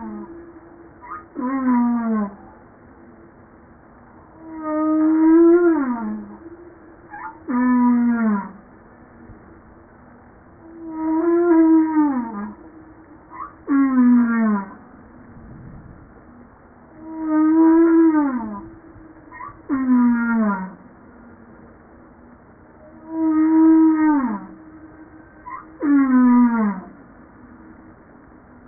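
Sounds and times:
humpback whale song: 0.0s - 2.8s, 4.1s - 8.7s, 10.6s - 14.9s, 16.9s - 20.9s, 22.8s - 27.7s.

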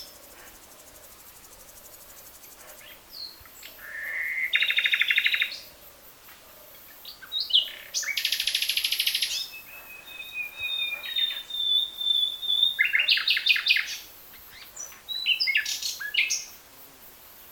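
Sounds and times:
Common nightingale Luscinia megarhynchos song with trills, whistles and chattering: 0.0s - 16.6s.

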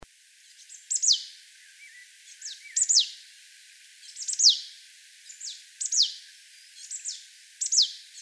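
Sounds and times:
Marsh tit Poecile palustris calling with falling high notes: 0.5s - 3.2s, 4.0s - 6.2s, 6.8s - 8.2s.

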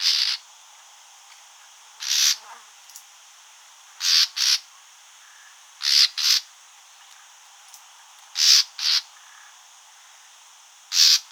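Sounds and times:
common nightingale Luscinia megarhynchos harsh rasping calls: 0.0s - 0.4s, 2.0s - 2.4s, 4.0s - 4.6s, 5.8s - 6.5s, 8.4s - 9.1s, 10.9s - 11.3s.

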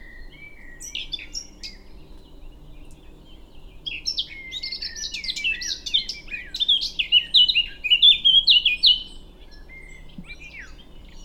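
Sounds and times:
Eurasian blackcap Sylvia atricapilla singing: 0.0s - 11.2s.

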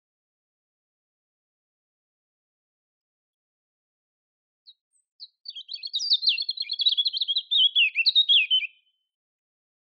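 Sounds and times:
European robin Erithacus rubecula song: 4.7s - 9.0s.

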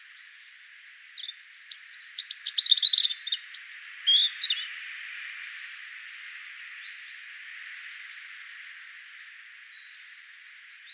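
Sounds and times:
European robin Erithacus rubecula song: 1.2s - 4.7s.

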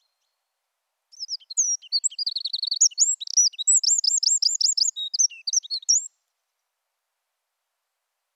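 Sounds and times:
Eurasian wren Troglodytes troglodytes singing: 1.1s - 6.2s.

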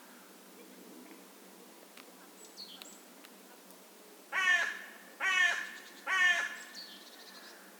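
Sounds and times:
carrion crow cawing: 4.3s - 6.7s.

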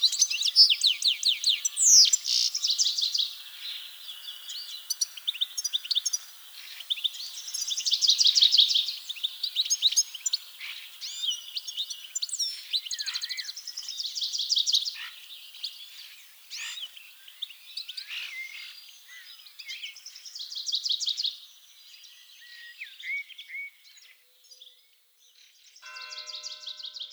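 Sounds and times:
European goldfinch Carduelis carduelis singing: 0.0s - 21.2s.

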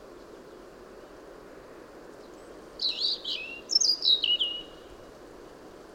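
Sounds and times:
Erithacus rubecula song: 2.8s - 4.9s.

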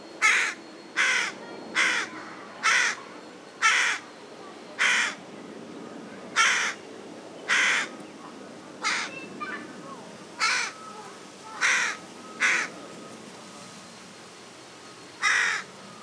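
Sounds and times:
Carrion crow Corvus corone giving hoarse caws: 0.2s - 4.1s, 4.8s - 5.2s, 6.4s - 6.8s, 7.5s - 8.0s, 8.8s - 9.2s, 10.4s - 10.9s, 11.5s - 12.7s, 15.2s - 15.7s.

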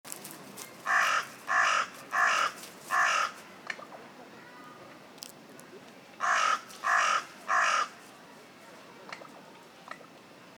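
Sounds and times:
Carrion crow Corvus corone cawing: 0.8s - 3.4s, 6.2s - 8.0s.

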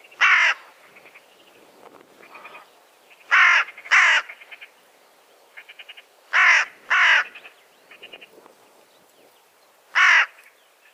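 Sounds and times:
carrion crow Corvus corone cawing harshly: 0.2s - 0.7s, 3.3s - 4.4s, 5.6s - 7.4s, 9.9s - 10.4s.

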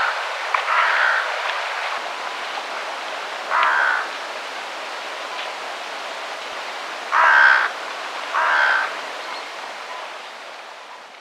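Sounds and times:
Carrion crow Corvus corone giving harsh grating caws: 0.0s - 1.3s, 3.5s - 4.1s, 7.1s - 7.7s, 8.3s - 9.0s
steady hiss of background noise: 0.0s - 11.2s.

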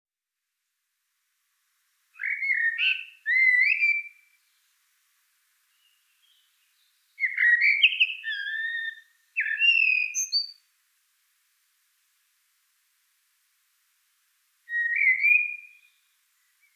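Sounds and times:
Common blackbird Turdus merula song with fluty whistled phrases: 2.2s - 4.6s, 5.7s - 10.6s, 14.7s - 16.7s.

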